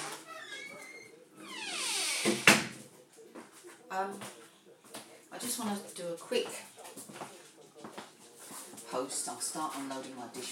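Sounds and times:
kitchen door squeaking and banging shut: 0.0 - 2.8
TV on: 0.0 - 10.4
faint voices murmuring: 0.0 - 10.4
speech: 4.0 - 4.4, 5.4 - 7.2, 9.0 - 10.4.

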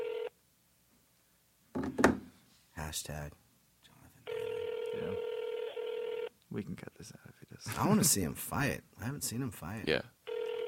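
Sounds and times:
speech: 2.9 - 3.4, 6.5 - 10.2
phone keypad tone: 4.3 - 6.3, 10.3 - 10.6.

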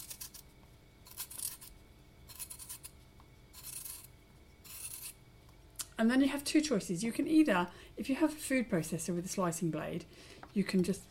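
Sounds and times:
potatoes being peeled by hand: 0.0 - 5.2
speech: 6.0 - 11.0.

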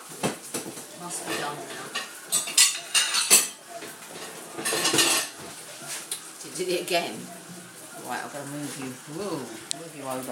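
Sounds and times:
dishes and cutlery clinking in a dishwasher: 0.0 - 5.6
speech: 1.0 - 2.0, 6.6 - 7.4, 8.1 - 10.3.

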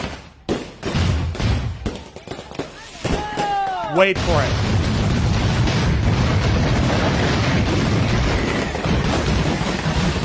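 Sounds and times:
fireworks exploding in a burning U-Haul truck set on fire by arson: 0.0 - 10.2
steady roaring rumble of a burning truck: 3.7 - 10.2
speech: 4.0 - 4.8.

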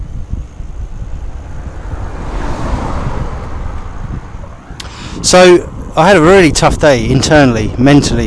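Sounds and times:
low wind buffeting on the microphone: 0.0 - 8.2
car driving past: 0.7 - 5.9
speech: 5.2 - 8.2.

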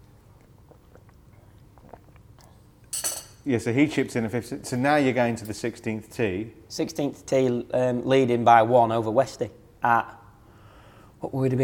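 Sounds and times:
gulp of hot drink: 0.0 - 2.7
sipping hot coffee: 0.0 - 2.9
speech: 3.4 - 10.2, 11.2 - 11.6.

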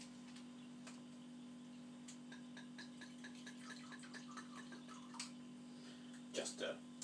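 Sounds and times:
steady low electrical hum: 0.0 - 7.0
wine trickling into a glass for tasting: 2.8 - 5.2
speech: 6.4 - 6.9.

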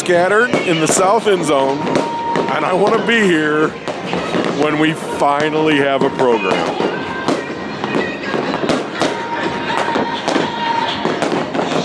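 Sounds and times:
faint crowd murmur: 0.0 - 11.8
fireworks cracking and booming: 0.0 - 11.8
speech: 0.1 - 6.9.

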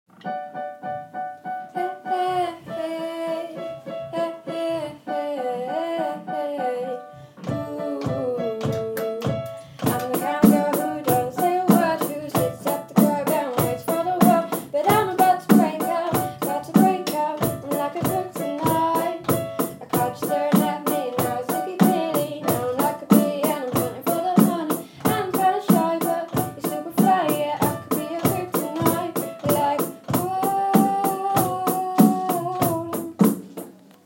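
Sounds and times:
piano: 0.1 - 34.0
person singing: 1.8 - 33.9
drums: 7.5 - 34.0.

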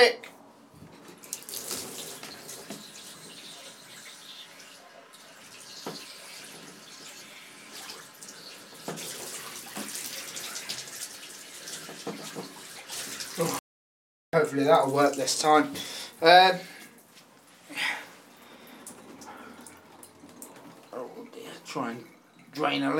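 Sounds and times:
speech: 0.0 - 0.2, 14.4 - 16.8, 21.7 - 22.9
tap running cold water dousing hair: 1.0 - 13.6, 18.4 - 22.7.

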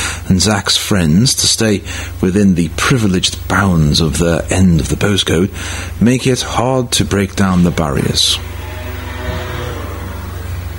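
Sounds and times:
speech: 0.3 - 8.6
motorbike engine drone passing in the street: 7.3 - 10.7.

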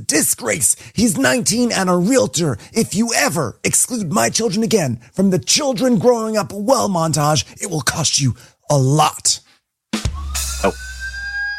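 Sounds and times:
speech: 0.1 - 9.4, 10.4 - 10.8
siren wailing: 10.2 - 11.5.

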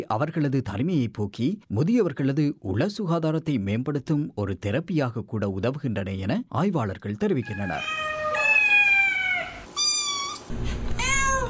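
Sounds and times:
speech: 0.0 - 8.1
cat meowing: 7.4 - 11.4.

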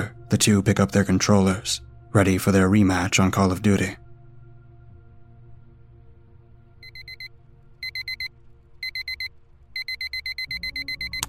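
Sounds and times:
speech: 0.3 - 4.0
phone alarm ringing inside a pocket: 6.8 - 11.2.

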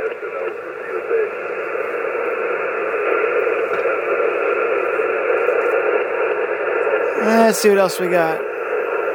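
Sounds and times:
voice on shortwave radio: 0.0 - 1.6, 7.1 - 8.5
steady band-limited shortwave radio static: 0.0 - 9.1
speech: 7.5 - 8.5.

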